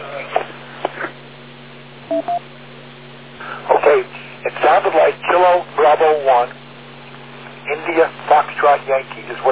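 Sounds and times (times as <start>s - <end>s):
hissy humming radio channel: 0.0s - 1.2s, 3.4s - 6.6s, 7.5s - 9.5s
short electronic repeater tone beeps: 2.1s - 2.4s.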